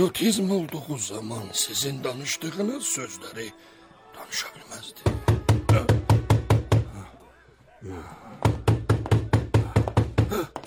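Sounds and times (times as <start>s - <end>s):
speech: 0.0s - 6.1s, 7.8s - 8.6s, 10.3s - 10.6s
loud rapid knocking on a door: 5.0s - 6.9s, 8.4s - 10.6s.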